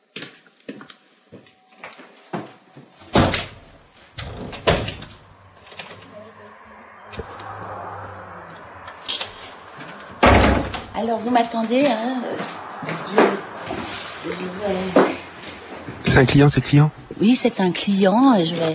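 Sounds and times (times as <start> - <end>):
door shut with knocks, clatters and a firm slam: 3.1 - 5.2, 10.2 - 11.0
speech: 11.0 - 13.2, 14.3 - 15.2, 16.1 - 18.7.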